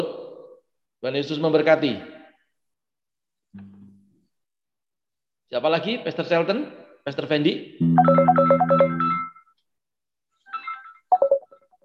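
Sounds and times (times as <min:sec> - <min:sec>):
speech: 0:01.0 - 0:02.1, 0:05.5 - 0:09.2
mobile phone ringtone playing a bright rapid melodic jingle: 0:07.8 - 0:09.5, 0:10.8 - 0:11.7.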